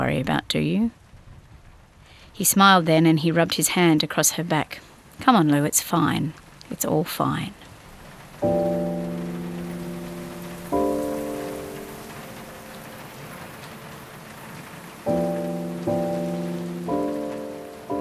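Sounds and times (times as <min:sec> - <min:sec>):
speech: 0:00.0 - 0:01.0, 0:02.4 - 0:07.7, 0:08.4 - 0:09.0
heavy rain pattering on a surface: 0:00.0 - 0:17.9
sustained musical chords ringing: 0:08.4 - 0:17.9.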